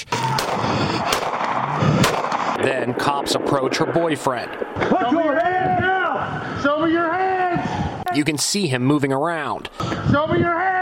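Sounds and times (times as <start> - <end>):
gunshots from police gunfire at carjacking suspects during a police chase: 0.0 - 6.4
dense rumbling noise: 0.0 - 8.1
speech: 2.6 - 7.2, 8.2 - 10.8.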